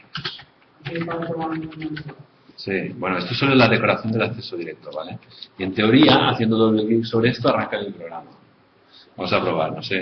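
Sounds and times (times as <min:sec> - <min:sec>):
typing on a computer keyboard: 0:00.0 - 0:02.2
speech: 0:00.9 - 0:08.4, 0:09.1 - 0:10.0.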